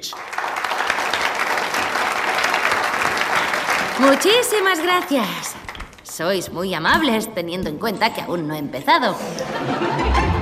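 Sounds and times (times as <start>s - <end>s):
speech: 0.0s - 0.6s, 4.0s - 10.3s
audience applause: 0.0s - 6.0s
laughter: 9.2s - 10.3s.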